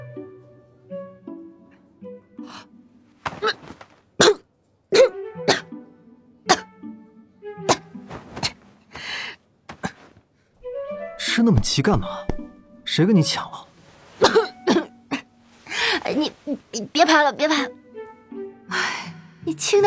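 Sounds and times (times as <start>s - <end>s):
strained gasps: 2.4s - 2.7s, 8.4s - 10.6s, 15.6s - 16.1s
person coughing and choking on popcorn stuck in the throat: 3.3s - 4.4s, 5.0s - 5.7s, 6.5s - 6.7s, 7.7s - 8.6s, 14.2s - 15.3s
speech: 11.4s - 12.3s, 13.0s - 13.7s, 16.2s - 17.8s, 19.5s - 19.8s.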